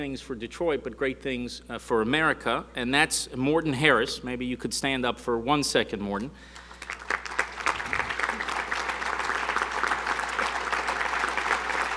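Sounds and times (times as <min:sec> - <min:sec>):
speech: 0:00.0 - 0:06.6
crowd clapping: 0:06.6 - 0:11.9.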